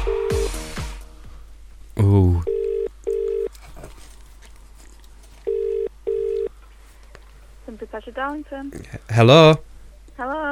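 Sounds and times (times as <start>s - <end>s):
telephone ringback tone down the line: 0.0s - 0.5s, 2.4s - 3.5s, 5.5s - 6.5s
speech: 8.2s - 10.4s.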